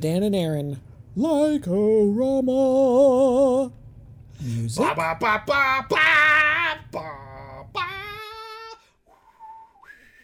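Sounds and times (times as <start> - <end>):
speech: 0.0 - 3.8, 4.4 - 7.2
person whistling a short tune: 9.1 - 10.2.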